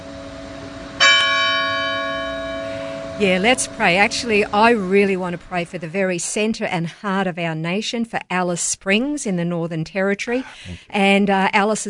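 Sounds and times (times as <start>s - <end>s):
church bell ringing as a call to prayer: 1.0s - 4.9s
faint low hum: 2.0s - 11.8s
speech: 3.2s - 11.8s.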